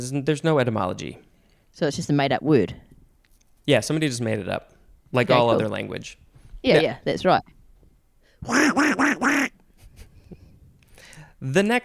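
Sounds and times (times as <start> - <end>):
speech: 0.0 - 2.9, 3.7 - 7.6, 8.4 - 9.5, 11.4 - 11.8
duck quacking: 8.4 - 9.6.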